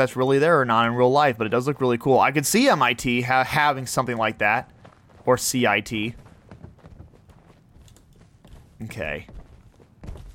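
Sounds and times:
speech: 0.0 - 6.2, 8.8 - 9.4
quick footsteps: 2.8 - 10.3.

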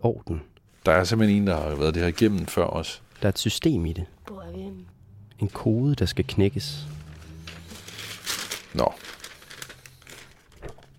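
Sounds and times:
speech: 0.0 - 7.0, 8.7 - 9.1
paper letter being handled, rustling and crinkling: 0.8 - 3.4, 6.7 - 10.9.

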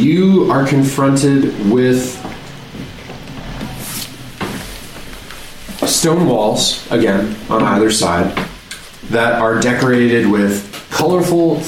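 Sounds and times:
speech: 0.0 - 2.3, 5.9 - 8.5, 9.1 - 11.6
door opening with rough noisy scraping: 1.0 - 10.0
dull knocks: 2.2 - 9.8.

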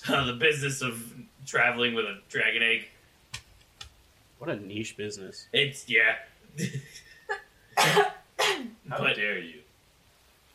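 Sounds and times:
speech: 0.0 - 3.0, 4.4 - 9.6
person coughing off-mic: 7.8 - 8.8.

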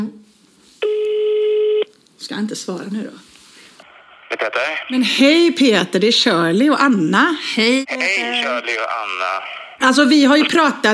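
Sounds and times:
outgoing phone call ringing tone: 0.8 - 1.9
speech: 2.3 - 3.3, 4.3 - 10.9.

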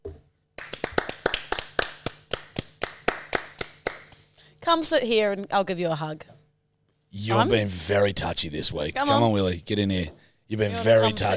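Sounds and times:
hands clapping in a quick steady rhythm: 0.6 - 4.4
speech: 4.7 - 6.4, 7.2 - 11.3.

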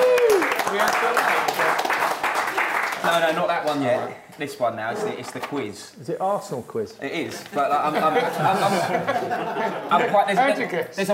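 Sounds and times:
falling whoop: 0.0 - 0.6
cheering voices: 0.0 - 1.5
audience applause: 0.0 - 3.4
speech: 3.1 - 11.1
laughter: 7.6 - 10.5.

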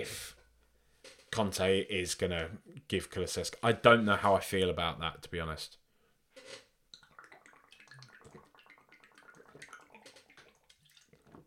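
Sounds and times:
speech: 0.0 - 0.3, 1.3 - 5.8
water sloshing and gurgling inside a large bottle: 7.0 - 11.4.

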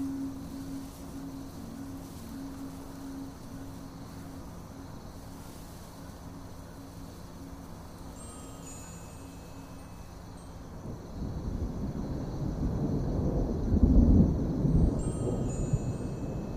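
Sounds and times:
high thin chiming tones: 0.0 - 10.8, 14.9 - 16.5
low steady hum: 0.0 - 16.5.

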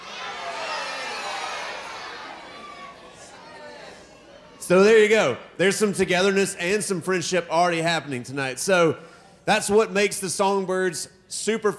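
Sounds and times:
large crowd of children in a concert audience shouting names: 0.0 - 4.7
speech: 4.7 - 11.7.

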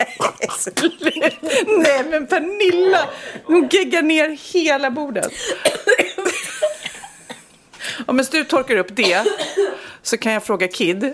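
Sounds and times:
person coughing: 0.0 - 1.9, 5.2 - 7.5, 9.0 - 9.8
laughter: 0.0 - 3.8
speech: 0.4 - 6.0, 8.1 - 11.1.

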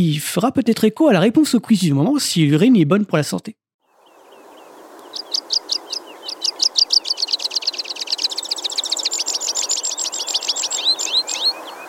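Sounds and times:
speech: 0.0 - 3.6
pipit singing: 4.0 - 11.8.

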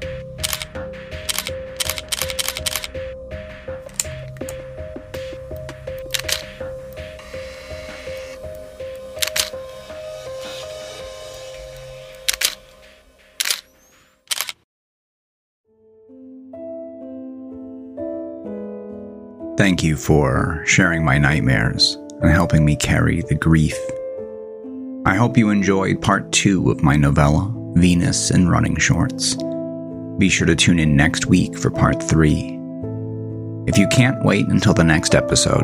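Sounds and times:
soft music: 0.0 - 14.4, 15.7 - 35.6
camera shutter clicking: 0.4 - 3.0, 6.1 - 6.6, 9.2 - 9.7, 12.2 - 12.7, 13.4 - 14.6
speech: 19.7 - 23.9, 25.1 - 29.6, 30.2 - 32.6, 33.7 - 35.6.

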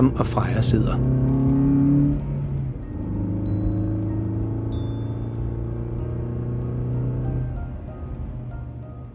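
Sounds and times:
speech: 0.0 - 1.4
car engine droning at full speed: 0.0 - 9.1.

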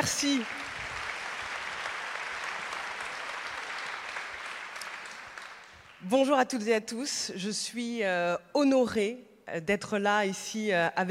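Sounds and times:
audience applause welcoming a speaker: 0.0 - 6.0
speech: 0.1 - 0.6, 6.0 - 11.0.

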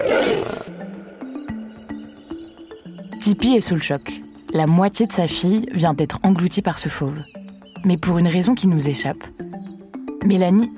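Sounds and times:
lion roaring: 0.0 - 0.8
speech: 3.3 - 9.4, 10.2 - 10.7.

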